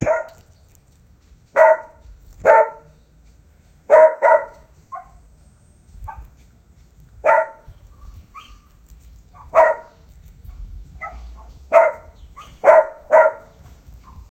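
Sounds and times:
dog barking: 0.0 - 0.5, 1.6 - 3.0, 3.9 - 5.2, 7.2 - 7.7, 9.3 - 10.0, 11.0 - 13.6.

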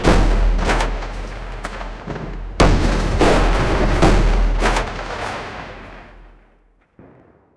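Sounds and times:
epic ancient battle sound: 0.0 - 7.1.

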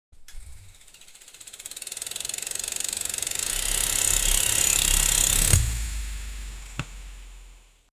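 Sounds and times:
Activa 5G scooter starting: 0.3 - 5.7.

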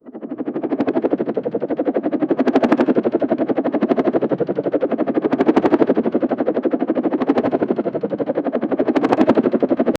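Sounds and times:
helicopter blades rotating: 0.1 - 9.9.

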